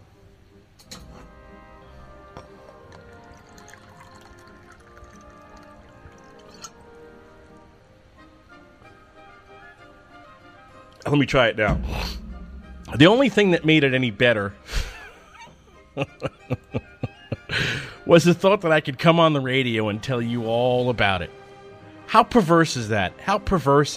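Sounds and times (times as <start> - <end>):
water poured into a glass: 2.4 - 7.1
glass clinking: 6.2 - 6.8
speech: 11.1 - 12.2, 12.9 - 14.7, 16.0 - 16.9, 18.1 - 21.4, 22.1 - 23.9
laughter: 14.7 - 17.6.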